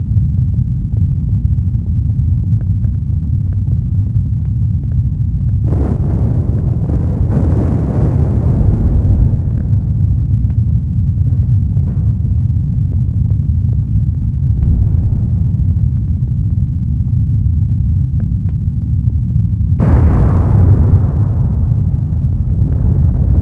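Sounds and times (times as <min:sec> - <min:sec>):
rumbling flames: 0:00.0 - 0:23.3
explosions: 0:05.5 - 0:23.3.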